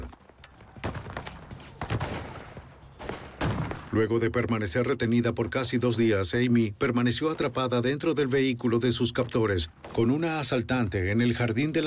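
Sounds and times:
gunfire exchange shots: 0.7 - 4.2
speech: 3.9 - 11.8.

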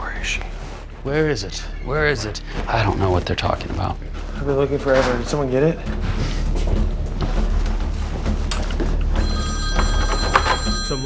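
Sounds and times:
rumble: 0.0 - 9.2
speech: 0.2 - 6.4
telephone bell ringing in a room: 9.1 - 11.0.

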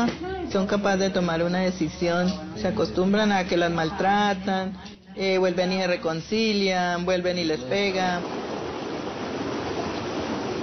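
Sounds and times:
speech: 0.0 - 8.4
river water flowing: 7.8 - 10.6.

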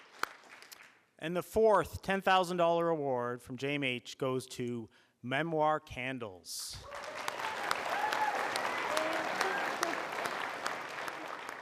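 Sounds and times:
large crowd applauding: 0.0 - 0.9, 6.8 - 11.5
speech: 1.2 - 7.0
scattered cheers and whoops from crowd: 6.8 - 11.5.

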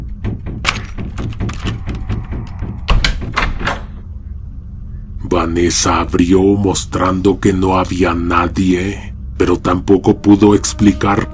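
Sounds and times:
door being shaken and rattled in its frame: 0.0 - 4.0
speech: 5.3 - 11.3.

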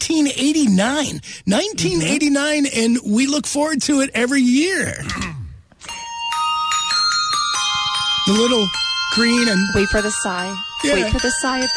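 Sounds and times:
speech: 0.1 - 5.4, 8.3 - 11.7
bright ringing holiday bell tones in a chocolate commercial: 5.8 - 11.7.

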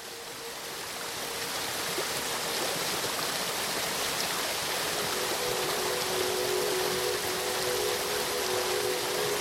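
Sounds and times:
waterfall rushing water: 0.0 - 9.3.

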